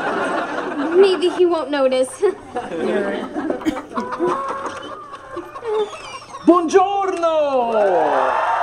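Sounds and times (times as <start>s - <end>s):
laughter: 0.0s - 7.2s
speech: 1.0s - 4.8s, 5.7s - 8.5s
flock of free-range chickens clucking and squawking on a dance floor: 3.8s - 6.4s.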